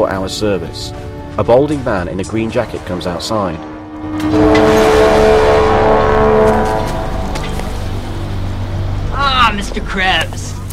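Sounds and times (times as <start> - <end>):
speech: 0.0 - 4.5, 9.8 - 10.7
motorbike driving off downtown: 2.3 - 8.8.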